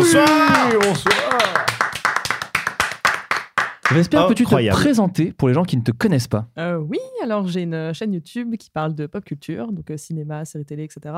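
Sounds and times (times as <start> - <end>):
person giving a brief voiced cheer sliding downward: 0.0 - 1.8
small group applauding: 0.0 - 4.5
speech: 0.1 - 1.6, 3.9 - 11.1.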